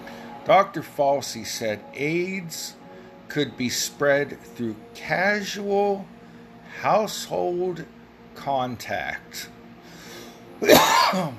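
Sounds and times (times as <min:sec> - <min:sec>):
speech: 0:00.5 - 0:09.6, 0:10.6 - 0:11.3
harsh throaty cough: 0:10.6 - 0:11.3.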